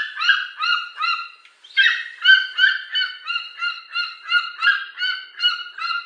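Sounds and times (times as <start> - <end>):
golden eagle calling in ringing harmonic yelps: 0.0 - 6.0.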